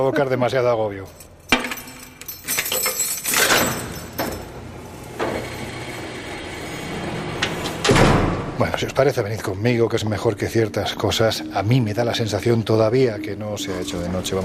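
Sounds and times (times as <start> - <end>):
speech: 0.0 - 1.3, 8.6 - 14.4
heavy metal prison cell door being unlocked and dragged open: 3.3 - 9.1.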